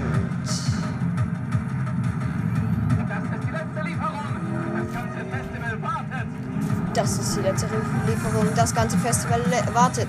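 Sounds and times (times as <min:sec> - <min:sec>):
high-revving sports car engine roaring while driving: 0:00.0 - 0:08.6
speech: 0:07.0 - 0:10.0.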